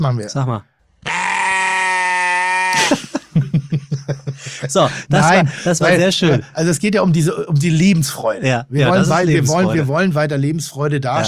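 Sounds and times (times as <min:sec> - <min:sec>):
speech: 0:00.0 - 0:00.7, 0:02.8 - 0:11.2
loud drawn-out sheep bleat used as censor bleep: 0:01.0 - 0:02.9
laughter: 0:02.7 - 0:06.5.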